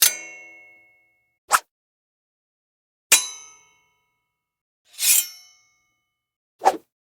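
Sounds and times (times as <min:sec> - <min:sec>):
sword scrapes: 0:04.9 - 0:05.8
sword hits: 0:05.0 - 0:05.7.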